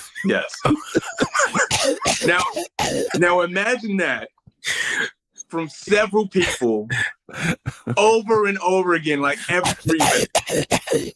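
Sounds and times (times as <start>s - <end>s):
speech: 0.2s - 11.1s
voice imitating wet phlegmy baby cough: 0.8s - 3.2s, 9.6s - 11.1s.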